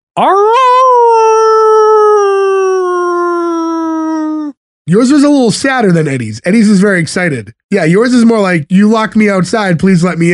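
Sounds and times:
speech: 0:00.2 - 0:00.6, 0:04.9 - 0:10.3
person imitating a wolf howl: 0:00.2 - 0:04.6.

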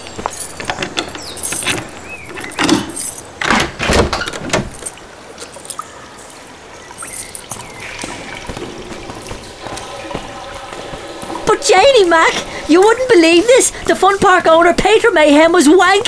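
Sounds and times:
keys for park toilets jangling: 0:00.0 - 0:05.9, 0:07.0 - 0:07.7
speech: 0:11.7 - 0:16.0.

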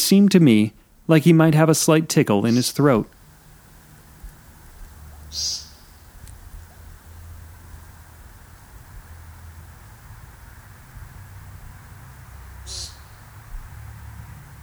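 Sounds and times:
steady low outdoor rumble: 0:00.0 - 0:14.6
speech: 0:00.1 - 0:03.2, 0:05.3 - 0:05.6
male American woodcock peent call: 0:02.5 - 0:13.8.

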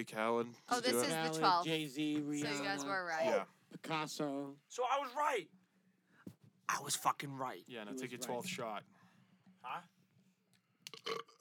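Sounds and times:
speech: 0:00.0 - 0:05.6, 0:06.7 - 0:09.0, 0:09.6 - 0:10.0, 0:11.0 - 0:11.3
burp: 0:10.9 - 0:11.3.

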